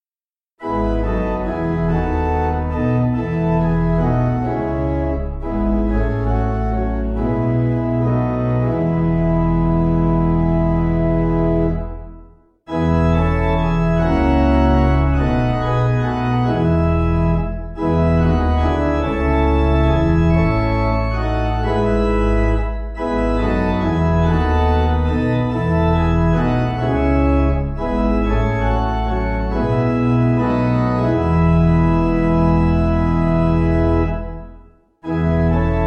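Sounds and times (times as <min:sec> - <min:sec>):
gloomy pipe organ piece: 0:00.6 - 0:35.8.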